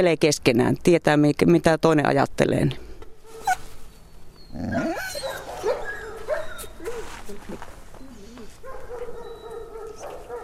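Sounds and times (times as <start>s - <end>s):
speech: 0.0s - 2.8s, 4.5s - 5.1s
dog yipping and barking with whimpers: 3.3s - 3.7s, 4.5s - 7.1s, 8.6s - 10.4s.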